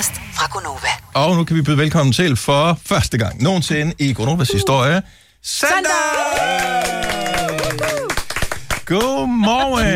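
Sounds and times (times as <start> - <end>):
speech: 0.0 - 8.0, 8.9 - 9.9
small group of studio hosts clapping: 5.9 - 9.9.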